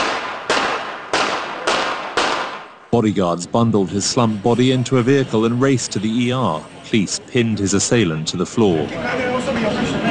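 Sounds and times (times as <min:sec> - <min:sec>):
gunshots fired at a prime minister greeting passers-by: 0:00.0 - 0:02.8
speech: 0:03.0 - 0:09.8.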